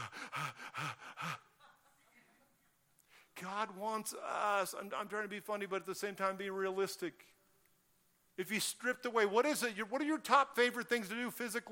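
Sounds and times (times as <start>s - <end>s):
people panting heavily with raspy strained gasps: 0.0s - 1.6s
speech: 3.4s - 7.4s, 8.4s - 11.6s.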